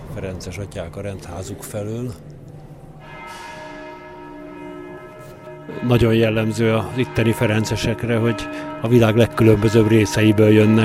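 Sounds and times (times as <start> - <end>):
speech: 0.2 - 2.4, 5.7 - 10.8
church bells ringing: 2.9 - 10.8.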